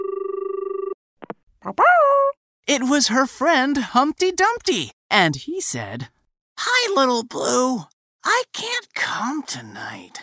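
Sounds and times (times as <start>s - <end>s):
telephone ringing with a warbling electronic tone: 0.0s - 1.0s
speech: 1.6s - 10.2s.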